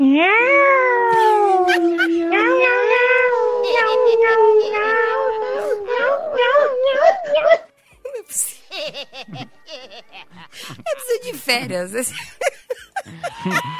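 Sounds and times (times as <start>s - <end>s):
couple imitating cats yowling on a roof: 0.0s - 7.6s
speech: 0.2s - 0.4s, 11.5s - 12.4s
laughter: 1.1s - 2.6s, 8.1s - 13.7s.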